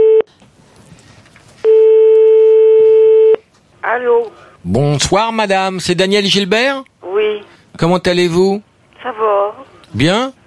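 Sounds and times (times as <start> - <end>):
telephone line tone while placing a call: 0.0 - 0.3, 1.7 - 3.4
speech: 4.0 - 10.4.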